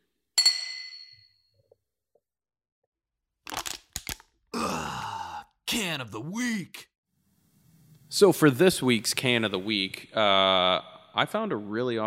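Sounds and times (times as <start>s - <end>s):
glasses clinking in a toast: 0.4s - 1.4s
speech: 5.9s - 6.9s, 8.1s - 12.0s.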